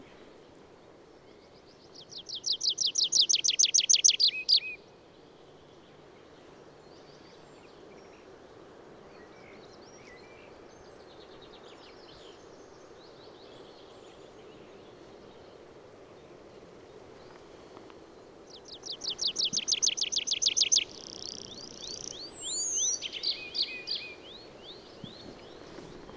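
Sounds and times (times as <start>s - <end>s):
Tree Pipit Anthus trivialis call: 2.0s - 4.8s, 18.5s - 26.1s.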